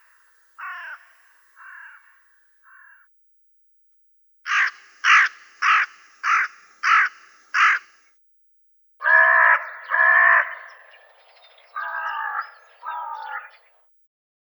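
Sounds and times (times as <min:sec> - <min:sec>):
hooded crow cawing: 0:00.0 - 0:03.1, 0:04.5 - 0:08.1, 0:09.0 - 0:11.1, 0:11.7 - 0:13.6.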